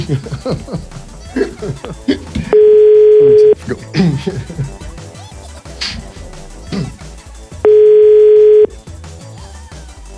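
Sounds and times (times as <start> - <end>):
people talking and chuckling: 0.0 - 7.5
telephone tone while a call is being placed: 2.5 - 3.6, 7.6 - 8.7.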